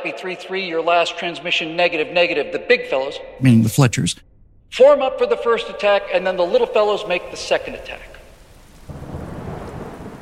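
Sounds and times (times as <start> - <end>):
speech: 0.0 - 8.2
heavy tropical rain squall pouring down at sea: 8.3 - 10.2.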